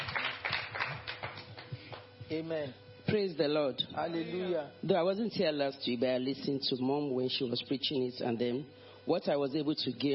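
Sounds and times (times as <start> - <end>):
group of people clapping in a roomy space: 0.0 - 2.2
speech: 2.3 - 10.1.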